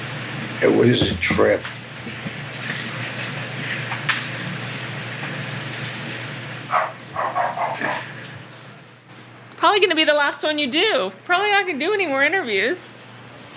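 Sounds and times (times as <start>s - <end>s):
speech: 0.6s - 2.2s, 9.7s - 12.9s
dogs barking: 6.7s - 8.4s.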